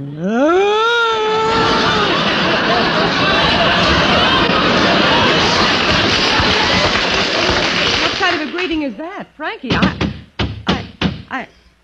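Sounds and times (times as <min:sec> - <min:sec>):
speech: 0:00.0 - 0:00.5, 0:11.4 - 0:11.6
laughter: 0:01.3 - 0:08.6
heavy footsteps stomping on a wooden porch: 0:09.7 - 0:11.3.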